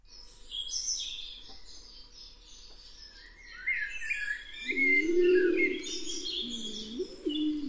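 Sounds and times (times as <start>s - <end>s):
blackbirds singing: 0.0s - 7.6s
Laurel pigeon cooing: 4.7s - 7.6s.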